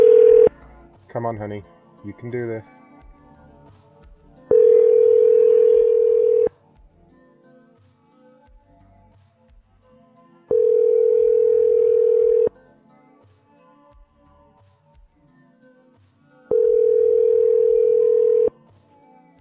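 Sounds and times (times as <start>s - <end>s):
telephone ringback tones of an unanswered call: 0.0s - 0.5s, 4.5s - 6.5s, 10.5s - 12.5s, 16.5s - 18.5s
speech: 1.2s - 2.8s.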